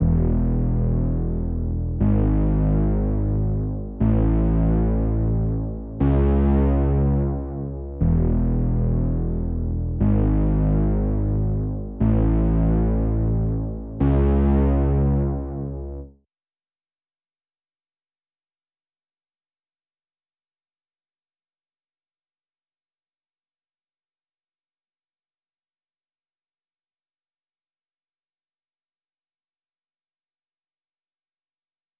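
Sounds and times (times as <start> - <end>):
120 BPM C sharp minor RnB bass loop: 0.0 - 16.1.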